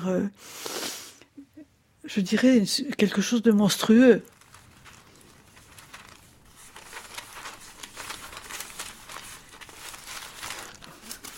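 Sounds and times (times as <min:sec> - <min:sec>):
speech: 0:00.0 - 0:00.8, 0:02.0 - 0:04.4
thin fragile paper pages being turned: 0:03.7 - 0:11.3.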